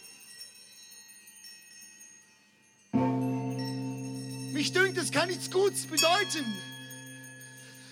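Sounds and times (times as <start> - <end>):
faint lingering hum from a church bell toll: 0.0 - 7.9
large church bell striking: 3.0 - 7.7
speech: 4.6 - 6.7.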